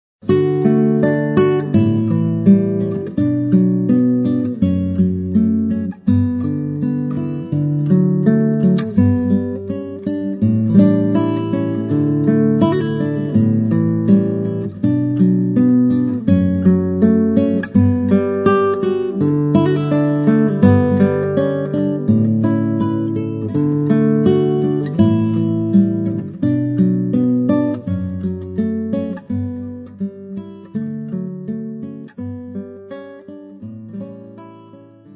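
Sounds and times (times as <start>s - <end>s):
solo guitar: 0.2s - 35.1s.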